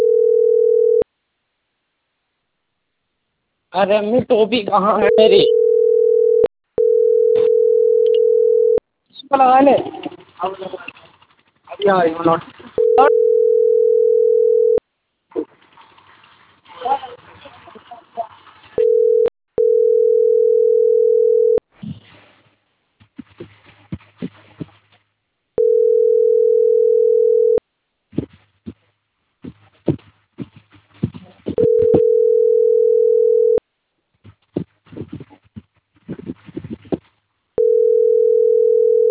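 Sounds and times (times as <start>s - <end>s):
telephone ringing unanswered: 0.0s - 1.0s, 5.0s - 8.8s, 12.8s - 14.8s, 18.8s - 21.6s, 25.6s - 27.6s, 31.6s - 33.6s, 37.6s - 39.0s
speech: 3.7s - 5.6s, 9.3s - 10.9s, 11.8s - 13.2s
rustling and handling noises: 9.5s - 13.6s, 15.3s - 19.2s, 21.7s - 26.0s, 28.0s - 32.6s, 34.1s - 37.5s.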